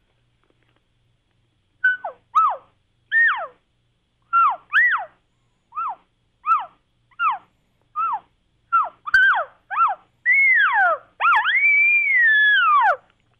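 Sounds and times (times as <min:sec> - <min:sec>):
mouth call imitating cow and calf chirps: 0:01.8 - 0:03.6, 0:04.3 - 0:13.1.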